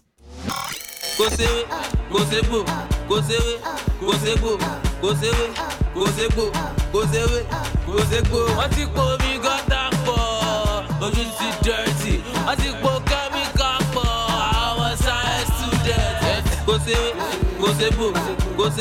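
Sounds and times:
Nigerian pop song sung in Yoruba with dance beat: 0:00.5 - 0:18.7.

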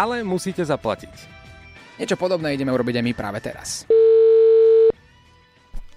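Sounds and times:
speech: 0:00.0 - 0:01.4, 0:02.0 - 0:04.1
telephone ringback tone of an outgoing call: 0:03.9 - 0:04.9.

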